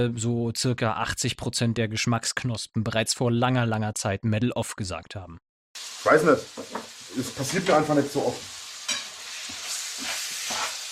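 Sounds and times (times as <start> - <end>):
speech: 0.0 - 5.4, 6.0 - 8.6
minced meat frying in a pan with curry and paprika: 5.8 - 10.9
stirring scrapes in a pan: 8.8 - 10.9.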